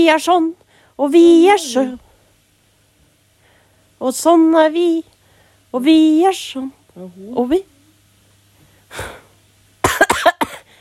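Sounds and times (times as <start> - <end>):
speech: 0.0 - 2.0, 4.0 - 5.1, 5.7 - 7.7, 8.9 - 9.2
person coughing harshly: 9.8 - 10.8.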